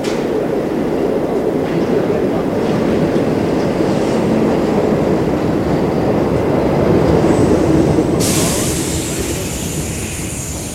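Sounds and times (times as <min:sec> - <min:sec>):
subway train rumbling into a station: 0:00.0 - 0:10.7
subway train hiss of brakes or doors: 0:07.2 - 0:10.7.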